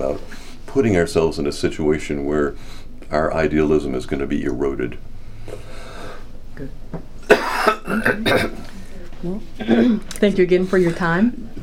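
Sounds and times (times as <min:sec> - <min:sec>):
speech: 0:00.1 - 0:05.6, 0:06.6 - 0:07.1, 0:07.9 - 0:11.6
harsh throaty coughing: 0:07.2 - 0:08.7, 0:09.6 - 0:10.0.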